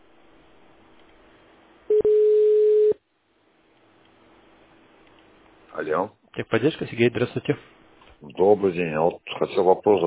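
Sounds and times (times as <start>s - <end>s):
steady electronic telephone ringback tone: 1.9s - 3.0s
speech: 5.8s - 10.0s.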